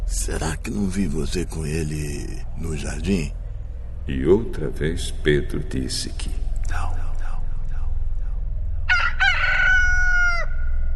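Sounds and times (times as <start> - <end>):
low steady rumble: 0.0 - 10.9
speech: 0.1 - 3.4, 4.0 - 7.0
rooster crowing: 8.9 - 10.9.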